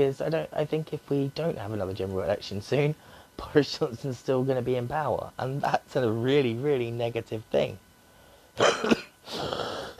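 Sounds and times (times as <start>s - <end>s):
speech: 0.0s - 7.8s
harsh raspy smoker's coughs: 8.6s - 9.9s.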